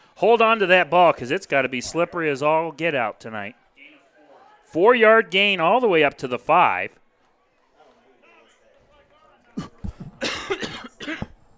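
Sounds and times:
speech: 0:00.2 - 0:03.6, 0:04.7 - 0:07.0
cough: 0:09.5 - 0:11.4.

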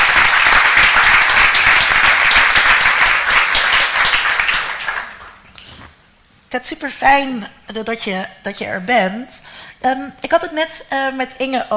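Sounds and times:
audience applauding to welcome a guest: 0:00.0 - 0:05.4
speech: 0:06.5 - 0:11.7.

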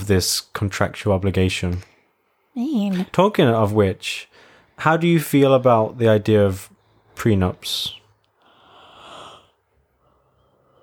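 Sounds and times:
speech: 0:00.1 - 0:01.9, 0:02.6 - 0:08.0
long breathy yawn: 0:08.4 - 0:09.6.

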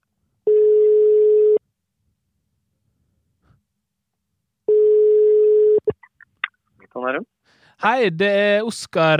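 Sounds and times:
telephone ringback tone while placing a call: 0:00.5 - 0:01.6, 0:04.7 - 0:05.8
speech: 0:07.0 - 0:09.1.

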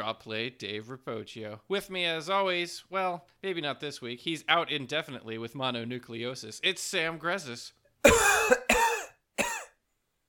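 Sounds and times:
speech: 0:00.0 - 0:08.6
person coughing: 0:08.0 - 0:09.8.

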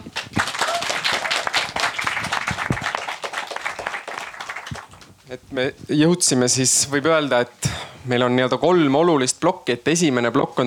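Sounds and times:
audience applause: 0:00.0 - 0:05.0
speech: 0:05.3 - 0:10.6.

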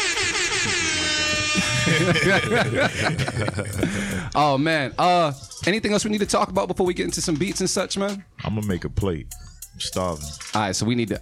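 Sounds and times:
air horn sound effect blaring: 0:00.0 - 0:03.1
laughter: 0:01.0 - 0:04.3
speech: 0:01.9 - 0:11.2.

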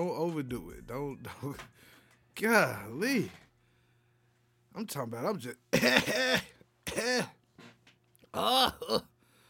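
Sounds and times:
speech: 0:00.0 - 0:03.4, 0:04.8 - 0:07.4, 0:08.3 - 0:09.1
raspy throaty coughing after choking on water: 0:05.7 - 0:07.4.

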